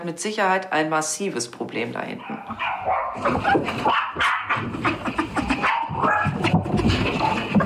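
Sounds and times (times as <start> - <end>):
speech: 0.0 - 5.2
dog barking frantically: 2.2 - 7.6.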